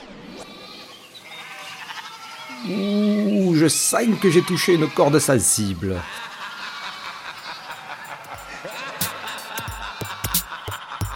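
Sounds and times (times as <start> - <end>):
sheep bleating: 0.5 - 8.9
speech: 2.6 - 6.3
laughter: 4.1 - 11.1.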